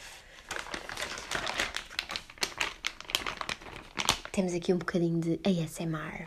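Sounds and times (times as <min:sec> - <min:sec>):
thin plastic bag packaging of a board game crinkling: 0:00.3 - 0:05.0
speech: 0:04.4 - 0:06.2.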